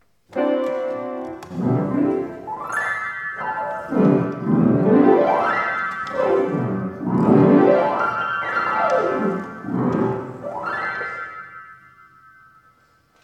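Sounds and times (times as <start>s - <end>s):
old piano rolls playing: 0.2s - 12.9s.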